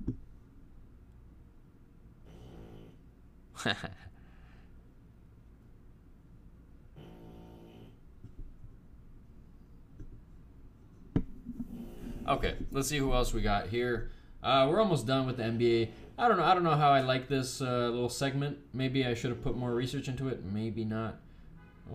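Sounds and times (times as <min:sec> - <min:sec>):
dog snoring: 0:02.2 - 0:03.0, 0:07.0 - 0:08.0
speech: 0:03.6 - 0:04.1, 0:12.3 - 0:21.2.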